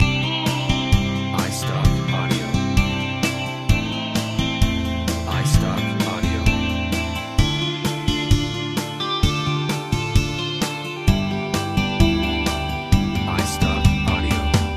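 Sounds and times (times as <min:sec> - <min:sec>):
acoustic guitars in a country pop loop: 0:00.0 - 0:14.7
drum kit in a country pop loop: 0:00.0 - 0:14.7.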